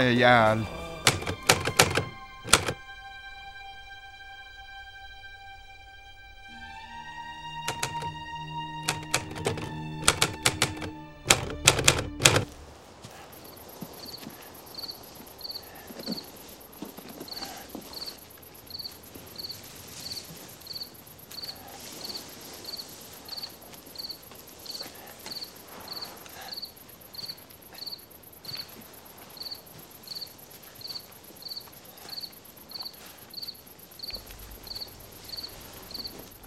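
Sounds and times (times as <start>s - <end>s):
speech: 0.0s - 0.8s
musical drone: 0.0s - 12.6s
insects chirping at night: 0.0s - 36.4s
MG42 machine gun firing: 9.0s - 12.5s.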